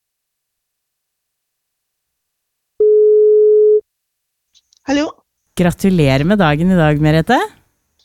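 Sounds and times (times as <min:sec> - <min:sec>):
phone ringback tone of an outgoing call: 0:02.8 - 0:03.8
speech: 0:04.9 - 0:07.6.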